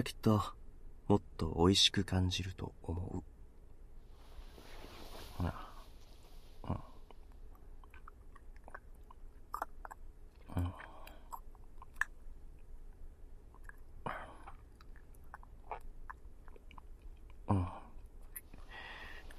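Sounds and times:
speech: 0.0 - 3.3, 5.4 - 5.6, 6.6 - 6.9, 10.6 - 10.8
person quietly chewing sweet food: 7.0 - 19.3.

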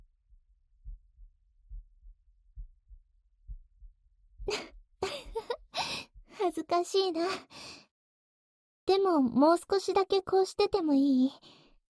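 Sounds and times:
heartbeat in a lub-dub rhythm: 0.8 - 6.3
speech: 6.6 - 7.6, 8.9 - 11.6.

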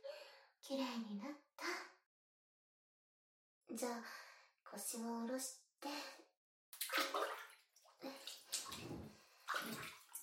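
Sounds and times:
speech: 0.7 - 1.4, 3.8 - 6.1
water splashing and sloshing in a bath during rinsing: 6.8 - 10.2.

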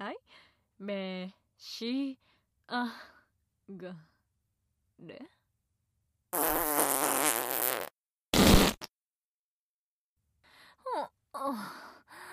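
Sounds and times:
speech: 0.8 - 3.1, 3.7 - 4.1, 5.0 - 5.4, 10.9 - 11.8
loud drawn-out fart with a buzzing wavering tone: 6.4 - 9.0
breathy sighs and gasps: 10.5 - 12.3.

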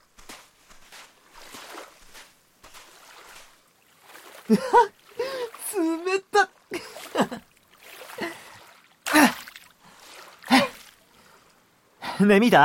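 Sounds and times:
feet kicking through shallow seawater at the sea: 0.0 - 11.4
person making soft laughs and exclamations: 4.4 - 7.5, 10.4 - 10.9
speech: 4.5 - 5.0, 12.2 - 12.6.

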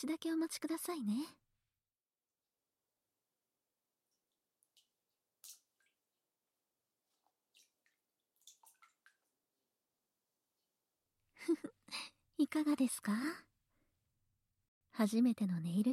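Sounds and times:
speech: 0.0 - 1.4, 11.4 - 13.5, 15.0 - 15.9
water drips and sloshes as a hand is placed into a bowl of hot water: 4.0 - 9.8
water splash in a bowl of hot water: 7.1 - 9.3.

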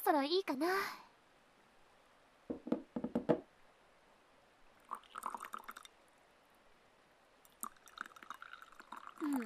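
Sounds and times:
speech: 0.1 - 1.0
tea poured alternately into several cups: 4.8 - 6.0, 7.4 - 9.4.

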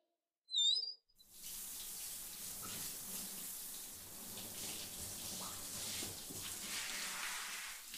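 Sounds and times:
brief high squeak: 0.5 - 1.0
shower water spraying: 1.2 - 7.9.

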